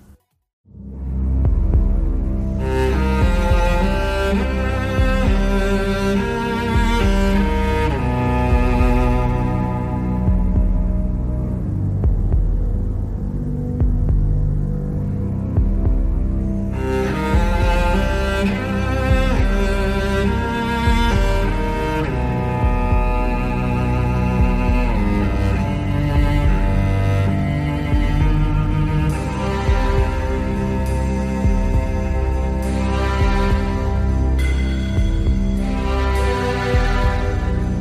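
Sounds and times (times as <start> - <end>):
loud instrumental music with deep throbbing bass and sustained tones: 0.6 - 37.7.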